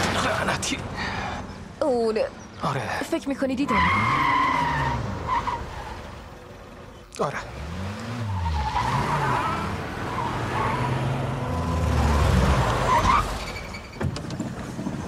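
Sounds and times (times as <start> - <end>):
speech: 0.6 - 1.0, 1.8 - 4.4, 7.2 - 7.7
car tire screech skidding to a stop: 3.7 - 6.6, 7.4 - 15.0.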